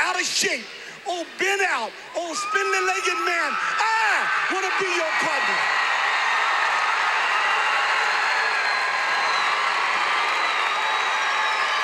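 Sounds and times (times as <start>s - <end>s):
speech: 0.2s - 5.8s
huge arena crowd cheering and shouting: 1.2s - 11.8s
crowd whistles: 8.3s - 9.7s, 10.3s - 11.8s.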